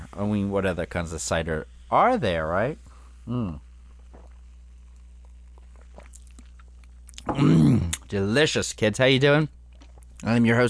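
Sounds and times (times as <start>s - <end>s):
quiet hum: 0.0s - 10.6s
speech: 0.1s - 3.6s, 7.2s - 9.6s, 10.2s - 10.6s
low throaty burp after drinking apple ginger cider: 7.2s - 8.1s.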